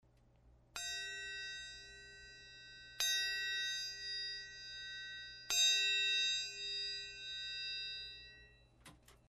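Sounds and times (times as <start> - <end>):
triangle harmonics: 0.7 - 9.2.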